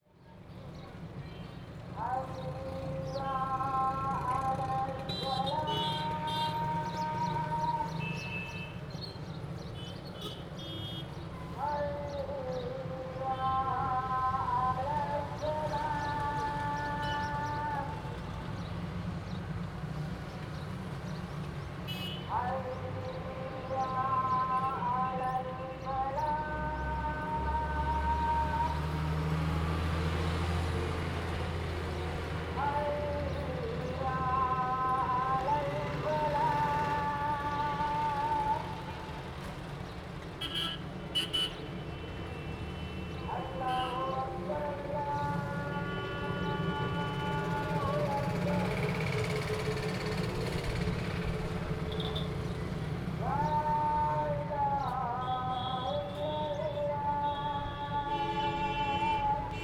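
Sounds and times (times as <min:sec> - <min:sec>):
Muslim prayer over city in Jodhpur India: 0:00.0 - 0:59.6
daytime traffic in Jodhpur: 0:00.0 - 0:59.6
vehicle horns honking in Jodhpur: 0:05.1 - 0:06.6, 0:08.0 - 0:08.9, 0:09.8 - 0:11.2, 0:21.9 - 0:22.4, 0:40.4 - 0:44.2, 0:45.5 - 0:47.9, 0:51.9 - 0:52.4, 0:55.2 - 0:59.6.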